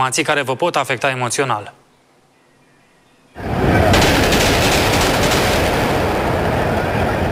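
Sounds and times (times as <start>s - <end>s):
speech: 0.0s - 1.8s
rapid gunfire in a city street: 3.8s - 6.8s.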